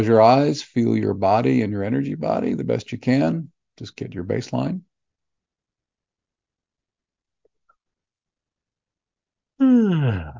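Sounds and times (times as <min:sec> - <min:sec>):
speech: 0:00.0 - 0:04.9, 0:09.6 - 0:10.3
drawn-out voiced yawn: 0:09.6 - 0:10.3.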